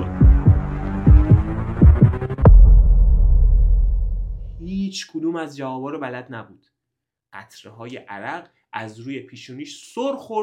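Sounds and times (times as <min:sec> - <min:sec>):
fast pounding heartbeat: 0:00.0 - 0:04.5
low steady droning rumble: 0:00.3 - 0:04.7
speech: 0:04.9 - 0:06.7, 0:07.3 - 0:10.4.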